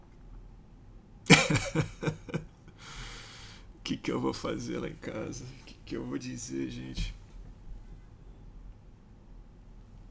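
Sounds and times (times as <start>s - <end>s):
laughter: 1.3s - 2.4s
voice faking a cough: 1.3s - 2.4s
speech: 1.5s - 2.4s, 3.9s - 7.2s.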